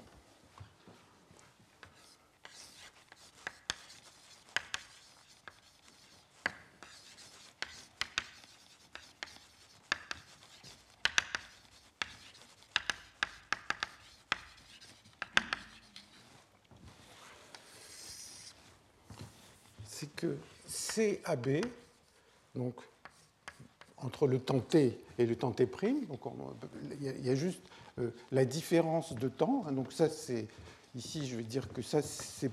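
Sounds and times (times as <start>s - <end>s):
writing an equation on a board during a physics lecture: 1.8s - 18.7s, 19.6s - 22.1s, 22.9s - 24.0s
speech: 20.0s - 21.8s, 22.6s - 22.9s, 24.2s - 32.5s.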